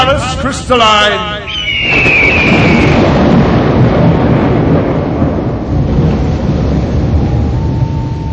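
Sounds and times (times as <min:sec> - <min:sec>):
loud thunder rolling and rumbling: 0:00.0 - 0:08.3
speech: 0:00.3 - 0:02.2
brief high whistling tone: 0:01.4 - 0:03.1, 0:07.2 - 0:08.3.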